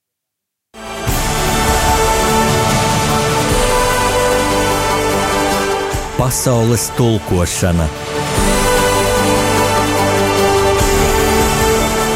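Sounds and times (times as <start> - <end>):
song playing: 0.9 - 12.1
speech: 6.2 - 8.1.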